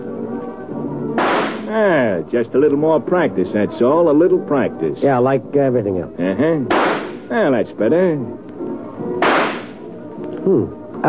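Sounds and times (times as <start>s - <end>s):
low murmuring background: 0.0s - 11.0s
rifle shot at a shooting gallery: 1.2s - 1.7s, 6.7s - 7.2s, 9.2s - 9.8s
speech: 1.7s - 8.4s, 10.4s - 11.0s.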